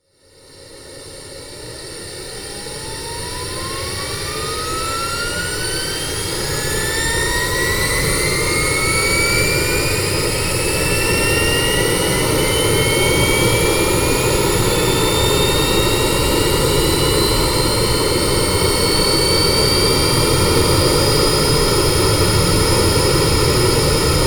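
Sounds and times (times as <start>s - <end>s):
small private plane turbine revving up: 0.3s - 24.2s.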